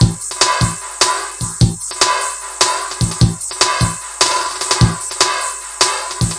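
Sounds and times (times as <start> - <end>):
drum loops and breaks: 0.0 - 6.3.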